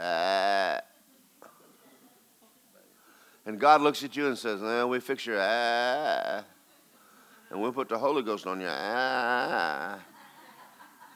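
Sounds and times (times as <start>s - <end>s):
person imitating sheep bleating: 0.0s - 0.9s, 8.7s - 10.0s
speech: 3.5s - 6.6s, 7.5s - 10.1s
laughter: 9.2s - 11.1s.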